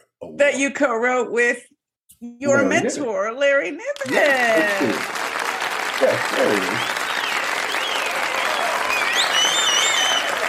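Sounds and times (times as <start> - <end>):
speech: 0.4 - 5.3, 6.0 - 7.0
crowd applauding an award: 4.0 - 10.4
sharp whistles from the crowd: 6.6 - 10.4.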